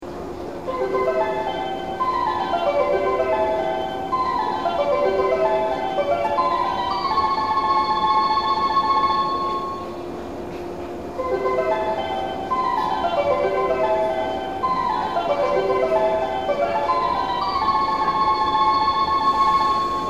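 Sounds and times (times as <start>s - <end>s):
bell ringing at Odawara on the Tokaido: 0.7s - 9.9s, 11.2s - 20.0s.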